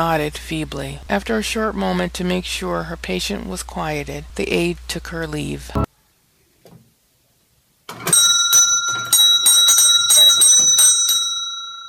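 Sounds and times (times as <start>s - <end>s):
speech: 0.0s - 5.8s
small bell above a shop door jingling: 8.1s - 11.8s.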